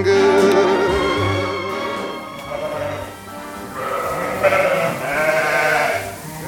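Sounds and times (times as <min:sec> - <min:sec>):
steady barnyard background: 0:00.1 - 0:06.4
flock of Lacaune ewes bleating: 0:02.4 - 0:06.4.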